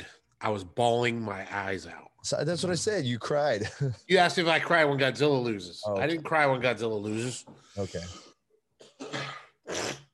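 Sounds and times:
speech: 0:00.4 - 0:08.3
nasal throat clearing from a person with a stuffed-up nose: 0:08.8 - 0:10.1.

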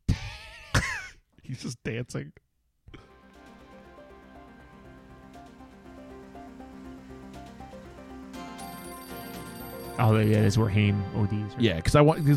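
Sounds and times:
speech: 0:01.5 - 0:02.4, 0:10.0 - 0:12.3
outdoor telephone bell ringing: 0:06.4 - 0:11.3, 0:12.1 - 0:12.3.

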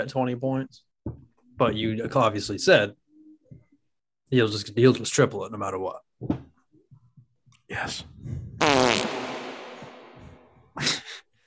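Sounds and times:
speech: 0:00.0 - 0:00.9, 0:01.6 - 0:03.0, 0:04.3 - 0:06.5, 0:07.7 - 0:09.2
loud sputtering fart with hollow echo: 0:08.6 - 0:10.6.

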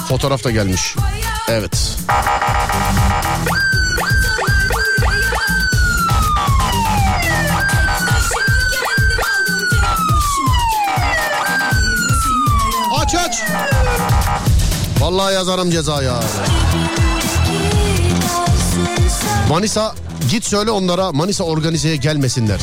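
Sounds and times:
steady thumping rhythmic background: 0:00.0 - 0:20.6
speech: 0:00.1 - 0:04.2, 0:14.3 - 0:17.1, 0:19.1 - 0:22.6
police siren yelping and wailing: 0:02.1 - 0:14.6
laughter: 0:16.0 - 0:18.2.

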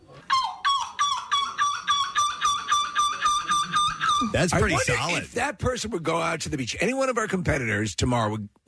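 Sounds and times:
person imitating seagull squawking calls: 0:00.2 - 0:05.2
speech: 0:04.2 - 0:08.6.

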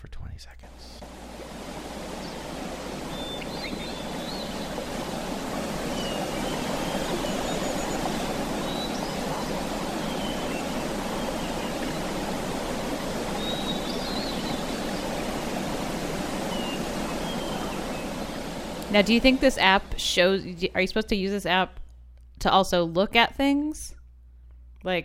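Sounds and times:
speech: 0:00.4 - 0:01.0, 0:18.9 - 0:21.8, 0:22.4 - 0:24.0, 0:24.8 - 0:25.0
water lapping at a giant mountain lake: 0:01.0 - 0:20.4
faint high bird chirps: 0:02.1 - 0:15.7, 0:16.4 - 0:19.0.

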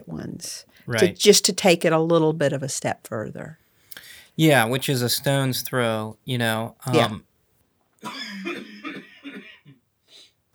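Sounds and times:
speech: 0:00.4 - 0:03.6, 0:04.4 - 0:07.3
breathy exhale: 0:03.8 - 0:04.4
person coughing: 0:08.0 - 0:09.8.

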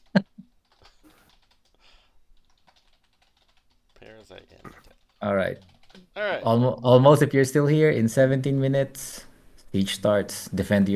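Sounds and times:
typing on a computer keyboard: 0:00.0 - 0:06.0
speech: 0:04.3 - 0:10.9.

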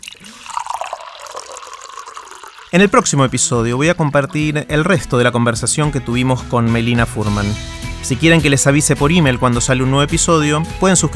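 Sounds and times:
water pouring into a glass: 0:00.0 - 0:05.1
speech: 0:02.7 - 0:11.1.

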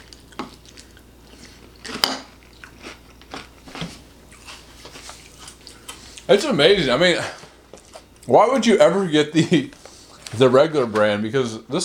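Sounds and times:
person chewing crispy corn flake cereal: 0:00.0 - 0:06.2
speech: 0:06.3 - 0:07.4, 0:08.3 - 0:11.8.

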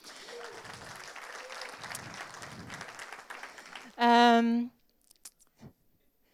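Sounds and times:
audience applause: 0:00.0 - 0:04.0
speech: 0:04.0 - 0:04.8.

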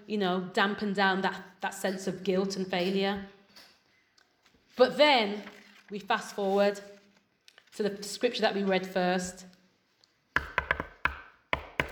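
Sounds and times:
speech: 0:00.1 - 0:03.4, 0:04.8 - 0:06.9, 0:07.8 - 0:09.5
patterned secret knock in a coded rhythm: 0:10.4 - 0:11.8.

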